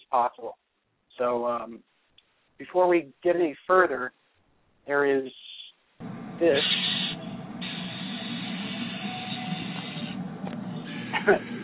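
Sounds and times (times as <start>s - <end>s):
speech: 0.1s - 0.6s, 1.2s - 1.9s, 2.6s - 4.2s, 4.8s - 5.5s, 6.4s - 6.8s, 11.2s - 11.6s
leopard gecko sharp squeaky burst: 6.6s - 7.2s
laughter: 10.9s - 11.6s.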